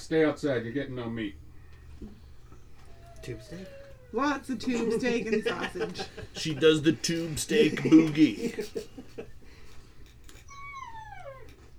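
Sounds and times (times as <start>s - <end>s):
speech: 0.0s - 1.4s, 2.0s - 2.2s, 3.2s - 9.3s
low steady hum: 0.0s - 11.7s
dog whining outside to be let in: 1.7s - 5.8s, 10.3s - 11.7s
dog yipping faintly: 2.6s - 5.0s, 10.4s - 11.7s
laughter: 4.5s - 9.7s.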